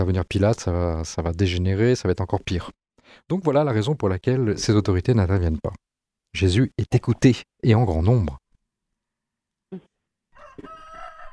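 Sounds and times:
speech: 0.0 - 8.4
rooster crowing: 10.3 - 11.3.

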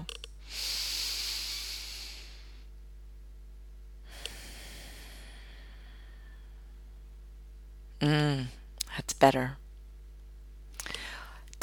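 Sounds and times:
deep breath in through the nose and out through the mouth: 0.4 - 2.7, 4.0 - 6.8, 10.8 - 11.4
speech: 8.0 - 9.6.

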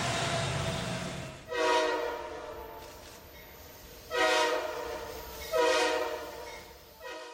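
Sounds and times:
low rumble of a passing train: 0.0 - 7.3
train horn blasts: 1.5 - 3.0, 4.1 - 7.3.

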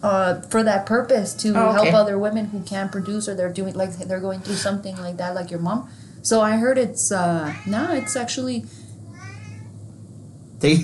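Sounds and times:
speech: 0.0 - 8.8, 10.6 - 10.8
cat meowing: 7.4 - 8.3, 9.1 - 9.7.

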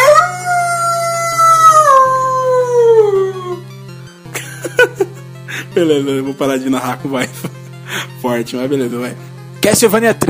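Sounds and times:
wolf howling: 0.0 - 3.7
laughter: 4.3 - 5.8, 7.2 - 8.1
speech: 5.8 - 7.6, 8.2 - 10.2.

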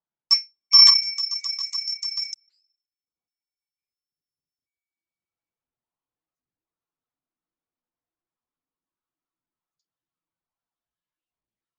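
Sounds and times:
small bright bell rung to begin meditation: 0.3 - 2.4.

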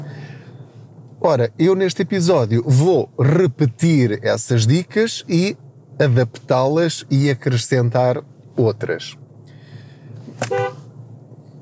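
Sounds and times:
steady engine hum: 0.0 - 11.6
speech: 1.2 - 9.2
single short car horn honk: 10.4 - 10.9.

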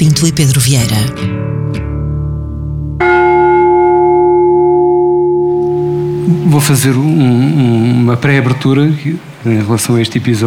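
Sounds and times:
speech: 0.0 - 1.9, 6.3 - 10.4
carillon bells ringing: 3.0 - 6.9.

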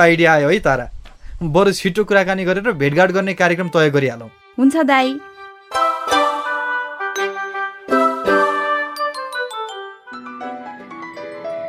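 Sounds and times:
speech: 0.0 - 5.8
bright chiming phone ringtone for an incoming call: 5.8 - 10.3.

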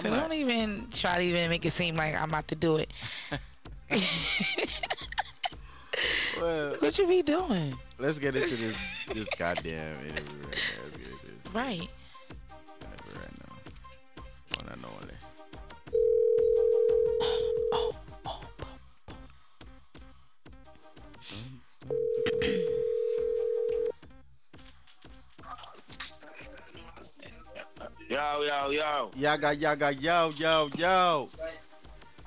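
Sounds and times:
speech: 0.0 - 5.1, 6.0 - 10.9, 11.5 - 12.0, 28.1 - 31.6
laughter: 3.0 - 7.0, 8.2 - 11.3, 25.9 - 28.1
phone ringback tone: 15.9 - 17.9, 21.9 - 24.0.

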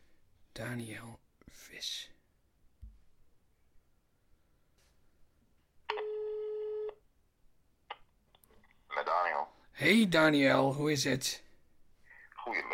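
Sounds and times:
speech: 0.6 - 2.2, 9.8 - 11.4, 12.5 - 12.7
ringback tone of an outgoing telephone call: 5.9 - 7.0.

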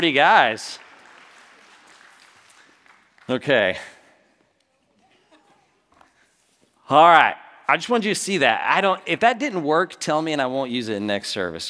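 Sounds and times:
speech: 0.0 - 0.8, 3.3 - 4.0, 6.9 - 11.6
crowd applauding: 0.0 - 4.0.

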